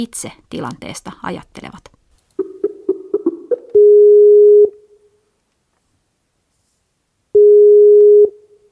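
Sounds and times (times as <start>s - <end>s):
speech: 0.0s - 2.0s
short beeps of a Skype call connecting to Damascus, Syria: 3.6s - 4.8s, 7.4s - 8.4s.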